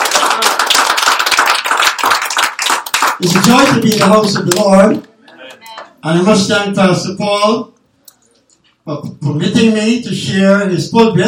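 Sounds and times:
congregation applauding in a church: 0:00.0 - 0:06.0
speech: 0:03.2 - 0:05.1, 0:06.0 - 0:07.7, 0:08.8 - 0:11.2.

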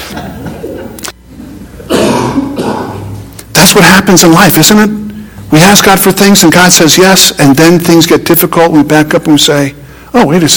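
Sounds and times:
speech: 0:00.1 - 0:01.0, 0:03.6 - 0:10.5
man coughing: 0:01.8 - 0:03.2.

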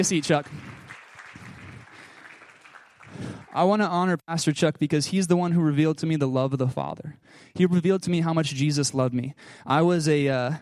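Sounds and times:
speech: 0:00.0 - 0:00.6, 0:03.6 - 0:10.6
audience clapping for a pastor: 0:00.0 - 0:04.1.

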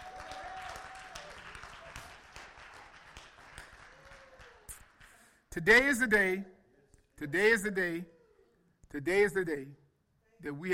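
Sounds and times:
audience applauding with dense steady hand clapping: 0:00.0 - 0:05.3
speech: 0:05.5 - 0:06.6, 0:07.2 - 0:08.2, 0:08.9 - 0:09.8, 0:10.4 - 0:10.7.

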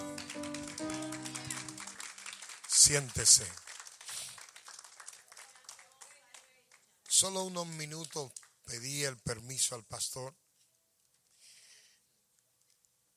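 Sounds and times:
music: 0:00.0 - 0:01.9
congregation applauding: 0:00.0 - 0:09.1
speech: 0:02.8 - 0:03.6, 0:07.2 - 0:10.4.

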